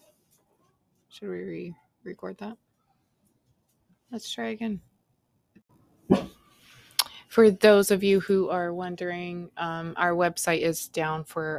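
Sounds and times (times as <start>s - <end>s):
speech: 1.2s - 2.7s, 4.1s - 4.9s, 7.4s - 11.5s
dog bark: 6.1s - 6.4s.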